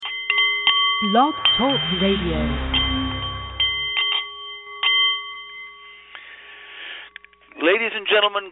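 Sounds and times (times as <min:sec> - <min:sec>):
meditation bowl ringing: 0:00.0 - 0:06.4
speech: 0:01.0 - 0:02.8, 0:07.7 - 0:08.4.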